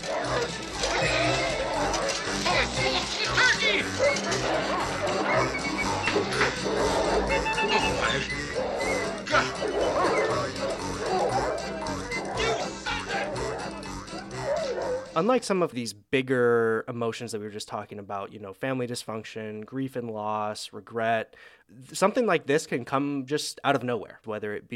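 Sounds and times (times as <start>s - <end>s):
clattering and scuffling: 0.0s - 8.1s
several dogs barking and yipping while eating Christmas dinner: 0.0s - 15.2s
speech: 15.2s - 24.7s.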